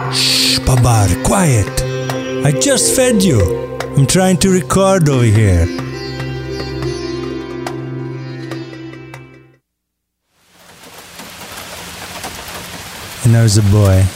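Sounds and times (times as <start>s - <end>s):
dense hissing downpour: 0.1s - 1.1s, 10.3s - 14.1s
speech: 0.6s - 1.8s, 2.4s - 5.8s, 13.3s - 14.1s
rain pattering on a tin roof: 10.3s - 14.1s.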